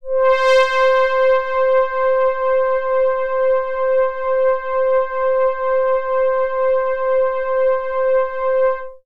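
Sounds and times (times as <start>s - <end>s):
high synth lead note in C: 0.0s - 9.0s.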